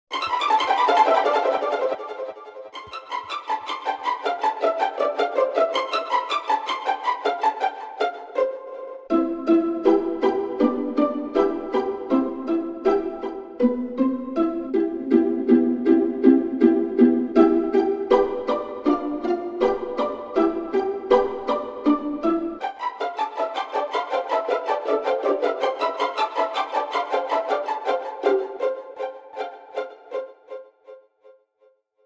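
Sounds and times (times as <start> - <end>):
descending violin pizzicato: 0.1 - 31.0.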